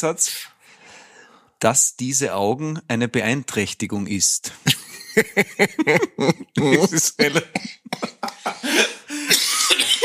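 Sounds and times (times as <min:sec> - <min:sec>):
speech: 0:00.0 - 0:00.5, 0:01.6 - 0:10.0
breathy laughter: 0:04.7 - 0:09.4
person recovering from a cold coughing: 0:05.7 - 0:10.0.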